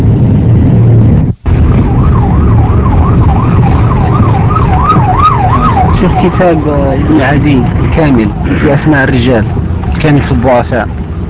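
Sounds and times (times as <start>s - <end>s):
dense street traffic in a jam rumbling: 0.0s - 11.2s
wailing siren rising and falling: 1.5s - 10.0s
speech: 6.3s - 11.0s.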